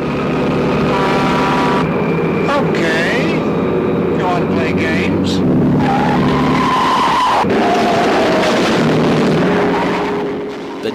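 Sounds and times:
18-wheeler truck air horn blast: 0.0 - 2.7, 5.4 - 10.8
18-wheeler truck diesel engine roar: 0.0 - 10.9.

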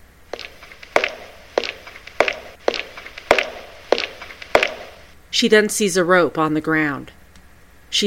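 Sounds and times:
footsteps crunching through a Japanese forest: 0.4 - 5.1
speech: 5.4 - 7.2.

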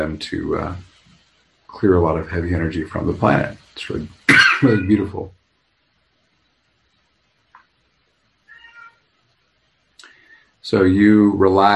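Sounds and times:
speech: 0.0 - 0.9, 1.7 - 5.4, 10.6 - 11.7
cat yowling: 8.5 - 9.1.

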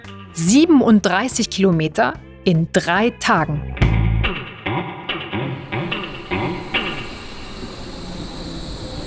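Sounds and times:
speech: 0.4 - 3.8
S-Bahn train on the Berlin Ringbahn arriving at a station platform: 4.6 - 9.0.

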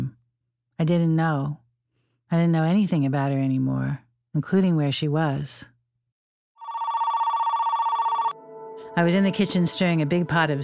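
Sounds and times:
speech: 0.8 - 1.6, 2.3 - 5.7, 9.0 - 10.6
telephone with warbling electronic trill ringing: 6.6 - 8.6.

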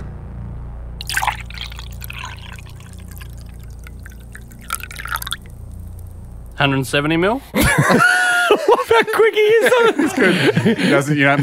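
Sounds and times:
low hum: 0.0 - 8.4
water pouring into a container: 1.0 - 6.6
speech: 6.6 - 11.4
laughter: 7.6 - 11.4.

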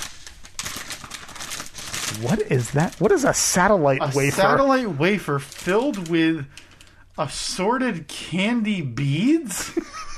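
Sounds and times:
crumpled paper bag holding candy crinkling as it is pulled open: 0.0 - 3.6, 5.2 - 6.9
speech: 2.2 - 6.6, 7.2 - 9.9.

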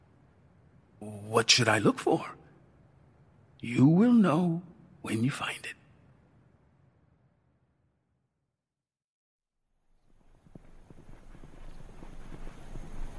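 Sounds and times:
speech: 1.0 - 2.4, 3.6 - 5.8
ridden horse hooves clip-clopping toward the foothills: 10.0 - 13.1.

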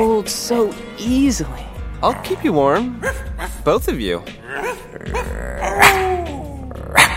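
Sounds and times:
speech: 0.0 - 6.1
dogs growling in a parking lot: 2.0 - 7.1
dogs whining and yelping in a parking lot: 4.4 - 7.1.

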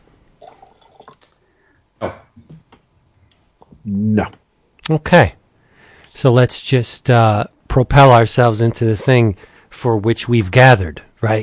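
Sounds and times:
wine pouring from a bottle into a glass: 0.4 - 1.4
speech: 3.9 - 5.4, 6.2 - 11.4.

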